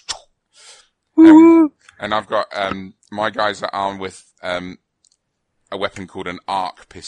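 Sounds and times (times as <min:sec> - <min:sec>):
person imitating a wargaming robot moving with hisses and clicks: 0:01.2 - 0:01.7
speech: 0:02.0 - 0:04.8, 0:05.7 - 0:07.0.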